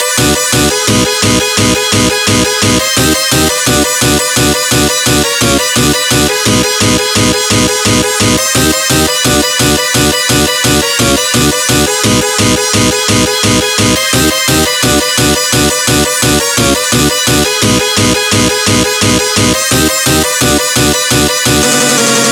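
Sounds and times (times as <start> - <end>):
synth loop: 0.0 - 22.3.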